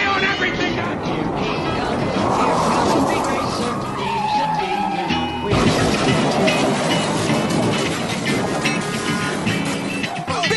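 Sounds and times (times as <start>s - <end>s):
race car engines roaring: 0.0s - 10.5s
race car tyre skid squealing: 1.5s - 10.5s
impact clatter: 5.5s - 10.1s.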